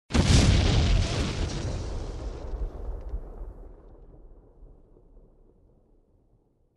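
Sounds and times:
debris falling: 0.1 - 3.6
fire explosion: 0.1 - 6.2.

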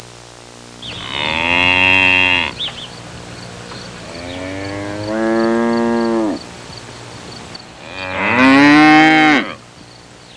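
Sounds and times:
bird ambience on a farm: 0.8 - 8.2, 9.5 - 10.3
cow mooing on a farm: 0.9 - 2.6, 4.0 - 6.4, 7.8 - 9.6.

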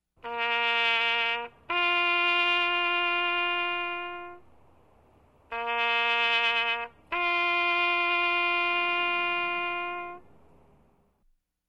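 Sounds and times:
trumpet bugle call: 0.2 - 4.5, 5.5 - 10.3.

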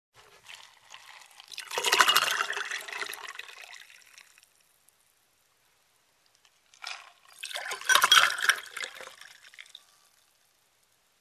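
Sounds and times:
liquid filling two glasses: 0.4 - 4.6, 6.7 - 10.4.

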